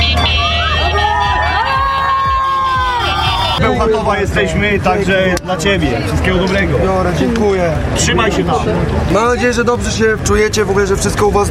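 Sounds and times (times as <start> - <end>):
lively crowd cheering and shouting in welcome: 0.0 - 4.1
excited people whooping: 0.1 - 3.6
speech: 3.6 - 11.4.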